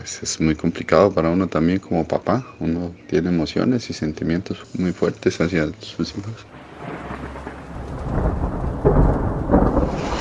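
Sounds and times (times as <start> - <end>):
speech: 0.0 - 7.0
low rumbling surges: 6.5 - 10.1
steady rain pouring: 6.5 - 10.1.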